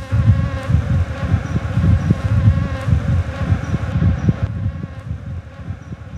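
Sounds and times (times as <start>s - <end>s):
wild bees buzzing: 0.0s - 6.1s.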